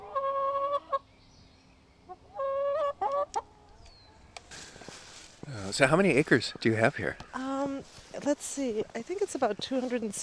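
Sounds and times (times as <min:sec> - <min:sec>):
chickens clucking and squawking near a farmhouse in southeastern Wisconsin: 0:00.0 - 0:01.2, 0:01.9 - 0:04.3
speech: 0:05.7 - 0:07.3, 0:08.2 - 0:10.2.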